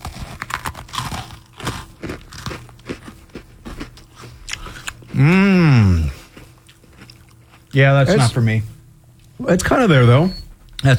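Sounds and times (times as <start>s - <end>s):
open-mouthed chewing of chicken and waffles: 0.0s - 8.3s
speech: 5.2s - 5.6s, 7.8s - 8.8s, 9.4s - 10.9s.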